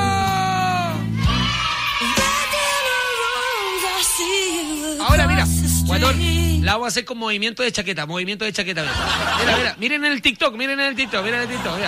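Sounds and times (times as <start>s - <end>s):
several voices shouting and screaming: 0.0s - 5.1s
speech: 6.0s - 11.8s
laughter: 8.7s - 9.9s, 10.7s - 11.8s.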